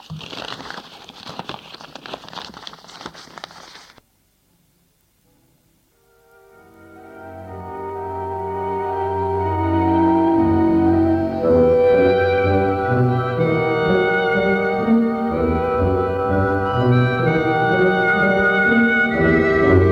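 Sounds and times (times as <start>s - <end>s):
newspaper crinkling and rustling as it is wrapped around an axe: 0.0s - 4.0s
sustained musical tones: 6.0s - 19.9s.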